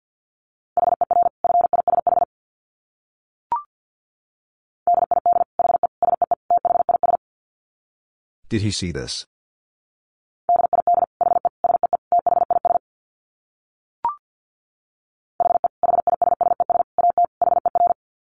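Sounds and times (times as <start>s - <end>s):
very fast Morse code beeps at 50 words per minute: 0.8s - 2.3s, 4.9s - 7.2s, 10.5s - 12.8s, 15.4s - 18.0s
speech: 8.5s - 9.3s.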